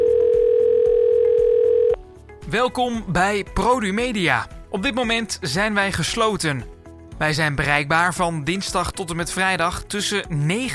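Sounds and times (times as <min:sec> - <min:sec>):
electronic telephone ringing tone before call connects: 0:00.0 - 0:02.0
speech: 0:02.5 - 0:10.7.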